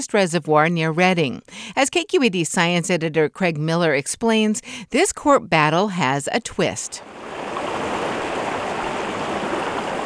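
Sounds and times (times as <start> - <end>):
speech: 0.0 - 7.5
flowing stream water rushing over rocks: 7.0 - 10.0.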